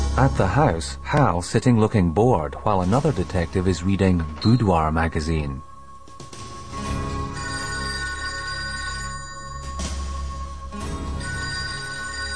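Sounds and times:
speech: 0:00.2 - 0:05.7
telephone ringing in a house: 0:06.8 - 0:12.3.

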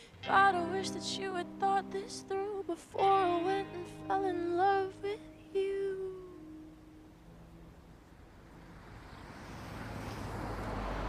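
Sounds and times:
speech: 0:00.2 - 0:05.9
car speeding past a station: 0:08.3 - 0:11.0.

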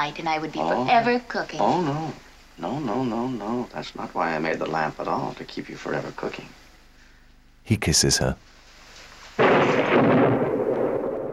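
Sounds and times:
speech: 0:00.0 - 0:06.6, 0:07.6 - 0:08.5
loud thunderclap rolling into a heavy rumble: 0:09.4 - 0:11.3.

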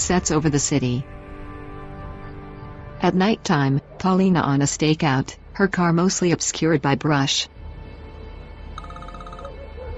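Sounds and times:
speech: 0:00.1 - 0:01.2, 0:03.0 - 0:07.6
telephone ringing in a car: 0:08.8 - 0:09.7.

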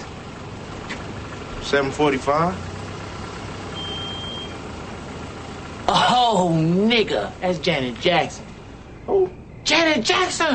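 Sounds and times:
car engine idling with a low steady rumble: 0:00.0 - 0:10.5
speech: 0:01.6 - 0:02.7, 0:06.2 - 0:10.5.

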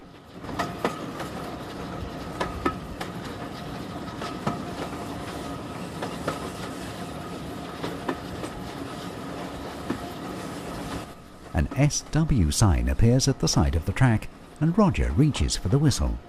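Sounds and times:
clickety-clack train wheel beats: 0:00.0 - 0:12.2
train crossing a bridge over a river: 0:00.0 - 0:16.2
speech: 0:11.8 - 0:16.2.

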